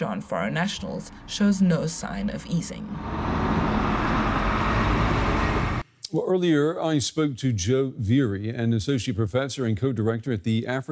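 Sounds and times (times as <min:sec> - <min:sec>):
speech: 0:00.0 - 0:03.8, 0:06.1 - 0:10.9
buses leaving a border crossing with engines rumbling: 0:00.0 - 0:05.8
road noise: 0:00.0 - 0:05.8.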